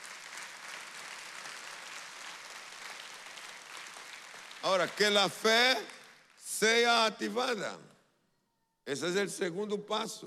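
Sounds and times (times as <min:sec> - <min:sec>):
faint audience applause at a religious service: 0:00.0 - 0:06.5
speech: 0:04.6 - 0:05.9, 0:06.6 - 0:07.9, 0:08.8 - 0:10.2.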